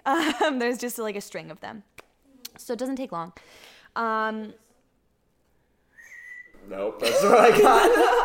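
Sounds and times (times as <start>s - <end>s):
speech: 0.1s - 2.0s, 2.6s - 4.6s, 6.6s - 8.2s
failed attempt at whistling: 5.9s - 6.7s
laughter: 7.0s - 8.2s.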